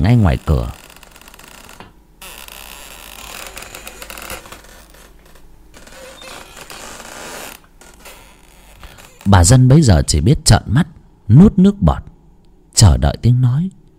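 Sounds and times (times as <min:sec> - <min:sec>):
speech: 0:00.0 - 0:00.8, 0:09.3 - 0:12.1, 0:12.8 - 0:13.8
bedroom door creaking open: 0:00.0 - 0:09.9.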